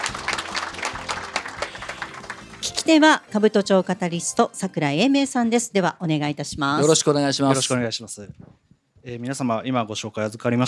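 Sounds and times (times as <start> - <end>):
audience applause welcoming a company chief executive at an investor presentation: 0.0 - 3.0
speech: 2.9 - 10.6.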